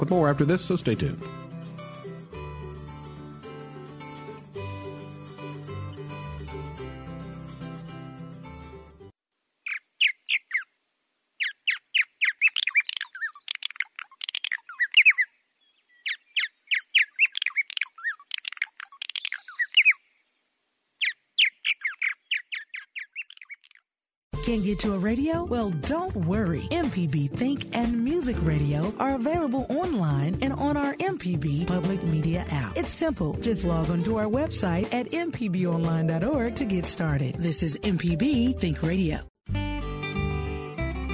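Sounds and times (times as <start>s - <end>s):
speech: 0.0s - 1.4s, 24.6s - 39.3s
music: 0.0s - 9.1s, 24.3s - 41.1s
bird calling in harsh squawking chirps: 9.6s - 10.7s, 11.4s - 20.2s, 21.0s - 23.8s.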